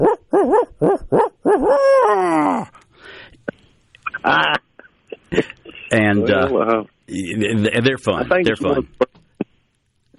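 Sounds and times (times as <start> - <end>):
speech: 0.0 - 1.2, 6.0 - 9.0
human voice imitating great horned owl and barred owl hoots: 0.0 - 2.8.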